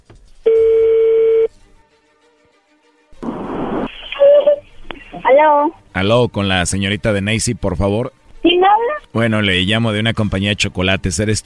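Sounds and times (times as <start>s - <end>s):
telephone ringback tone: 0.5s - 1.5s
crackly telephone line noise: 3.2s - 5.4s
speech: 5.4s - 11.4s.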